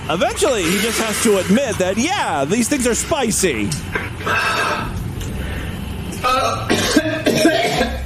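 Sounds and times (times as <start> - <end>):
speech: 0.1 - 4.6, 6.3 - 6.8
man gagging and retching: 3.8 - 5.0, 6.2 - 8.0
man coughing: 6.2 - 8.0.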